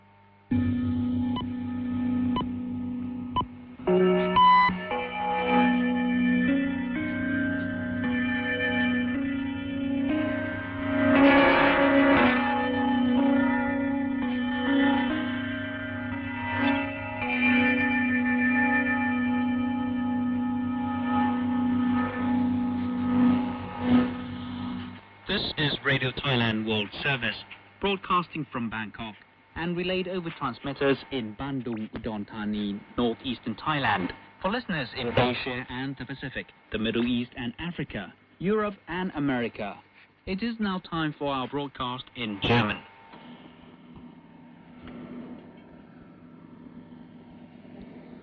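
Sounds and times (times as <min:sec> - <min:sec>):
steady droning hum: 0:00.0 - 0:48.2
radio interval signal of gongs and glockenspiel: 0:03.9 - 0:24.8
speech: 0:27.4 - 0:42.8.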